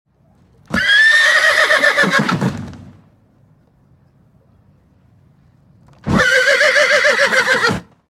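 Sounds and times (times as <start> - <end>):
horse whinny: 0.7 - 2.5, 6.0 - 7.9.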